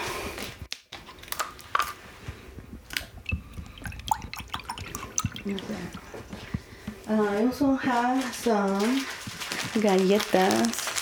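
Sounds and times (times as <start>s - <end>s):
water drips: 2.8s - 6.9s
water poured into a glass for an altar offering: 3.2s - 6.3s
speech: 5.5s - 6.1s, 7.1s - 9.2s, 9.8s - 10.8s.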